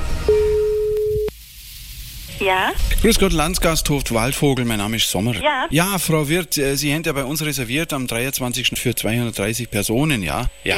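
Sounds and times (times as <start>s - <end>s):
telephone tone during a prank call: 0.3s - 1.3s
speech: 2.4s - 10.7s.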